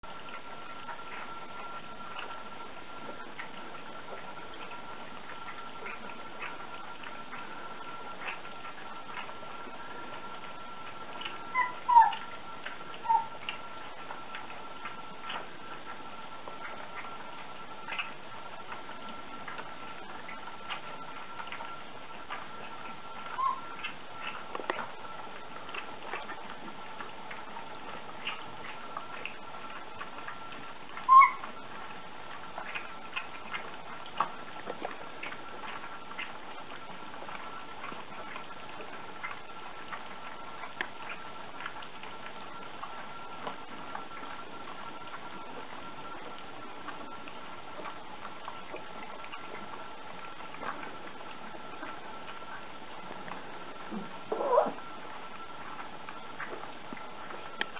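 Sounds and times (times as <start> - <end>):
puppies: 0.0 - 57.7.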